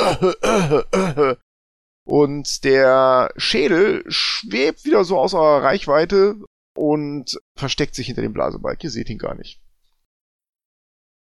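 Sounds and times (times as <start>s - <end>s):
harsh throaty coughs: 0.0s - 1.4s
speech: 0.1s - 1.4s, 2.1s - 9.6s.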